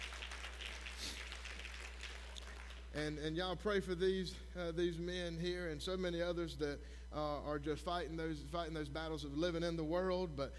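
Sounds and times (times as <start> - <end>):
church audience applauding: 0.0 - 2.9
low electrical hum: 0.0 - 10.5
speech: 2.9 - 10.5.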